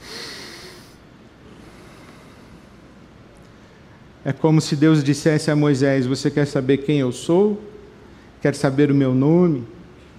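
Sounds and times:
deep audible breath in and out: 0.0s - 4.0s
speech: 4.2s - 7.7s, 8.4s - 9.8s.

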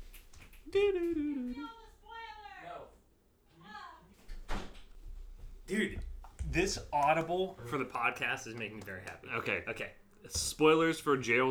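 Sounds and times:
speech: 0.7s - 1.8s, 5.7s - 11.5s
door shutting: 4.3s - 4.9s.

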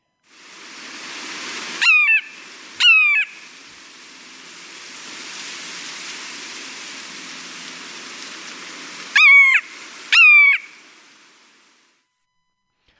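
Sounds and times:
steady hiss of rain or running water: 0.2s - 12.0s
bird song and calls of descending whistled notes: 1.5s - 11.4s.

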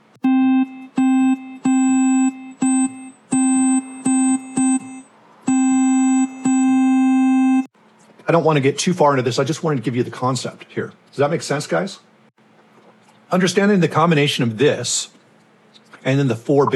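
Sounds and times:
synthesized sine wave tone with harmonics: 0.2s - 7.7s
speech: 8.3s - 12.1s, 13.3s - 15.2s, 16.0s - 16.7s.

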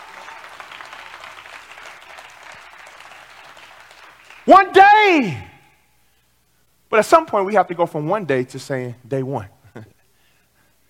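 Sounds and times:
audience clapping: 0.0s - 5.0s
speech: 4.5s - 5.5s, 6.9s - 9.9s.

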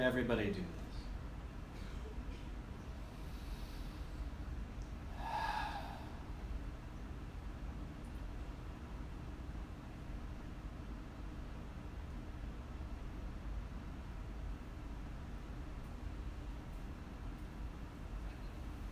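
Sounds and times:
speech: 0.0s - 0.9s
steady low hiss: 0.0s - 18.9s
class taking deep breaths in unison: 3.0s - 4.4s, 5.1s - 6.5s.

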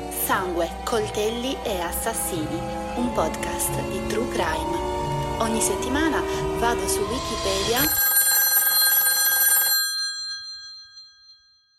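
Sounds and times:
speech: 0.3s - 8.1s
old-fashioned telephone bell ringing: 7.6s - 11.7s.

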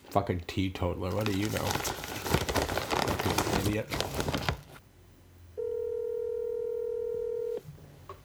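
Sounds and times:
speech: 0.1s - 2.1s, 3.3s - 4.3s
telephone keypad tone from a regular phone placing a call: 5.6s - 7.6s.

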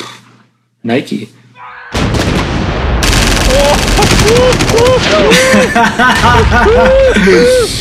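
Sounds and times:
speech: 0.9s - 1.4s, 4.3s - 7.7s
gunshot sound effects in rapid machine-gun bursts: 3.0s - 5.7s
voices shouting: 3.4s - 7.7s
people laughing: 3.5s - 7.7s.

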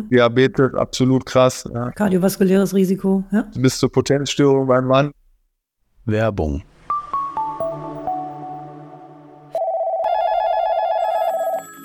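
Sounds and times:
speech: 0.0s - 5.2s, 6.0s - 6.7s
descending chime notes: 6.9s - 11.8s
electronic telephone ring with a warbling trill: 9.6s - 11.8s.

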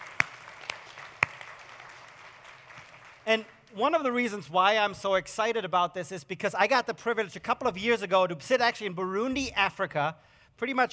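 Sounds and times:
scattered audience handclaps: 0.0s - 3.6s
speech: 3.3s - 10.9s.

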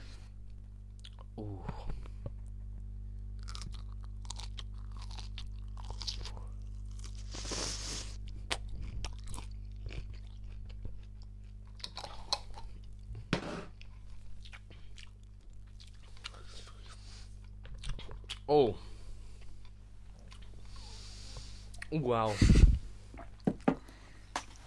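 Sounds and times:
steady low electrical hum: 0.0s - 24.6s
biting and chewing a whole green chili: 0.5s - 1.4s, 3.3s - 18.5s, 19.3s - 21.0s
speech: 1.4s - 1.8s, 18.5s - 18.8s, 21.9s - 22.7s.

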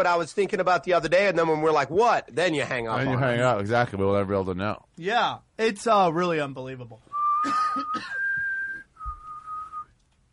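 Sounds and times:
speech: 0.0s - 8.2s
faint noise: 0.0s - 10.3s
person whistling sustained tones: 7.1s - 9.9s.

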